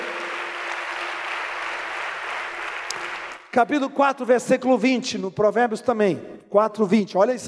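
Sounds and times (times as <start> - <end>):
large audience applauding: 0.0 - 3.5
speech: 3.6 - 7.4.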